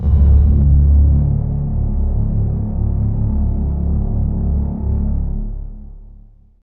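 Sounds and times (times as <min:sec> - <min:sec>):
synth sweep effect: 0:00.0 - 0:06.4.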